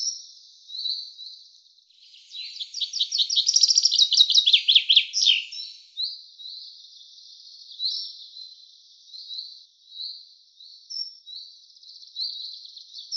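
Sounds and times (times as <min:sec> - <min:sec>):
common chaffinch song: 0:00.0 - 0:08.2.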